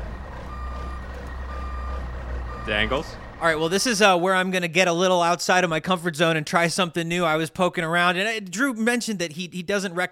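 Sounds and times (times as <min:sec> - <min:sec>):
large truck engine idling: 0:00.0 - 0:04.3
truck reversing alarm beeping: 0:00.4 - 0:03.1
speech: 0:02.6 - 0:10.0.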